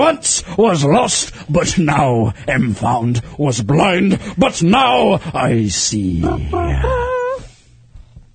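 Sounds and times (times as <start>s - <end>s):
speech: 0.0s - 7.0s
person giving a vocal cry in a mock pirate growl: 6.2s - 7.5s.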